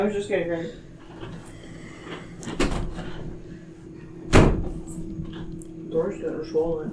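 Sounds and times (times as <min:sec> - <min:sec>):
speech: 0:00.0 - 0:02.7, 0:05.9 - 0:06.9
door swinging shut with a solid thud: 0:02.6 - 0:03.0, 0:04.3 - 0:04.8.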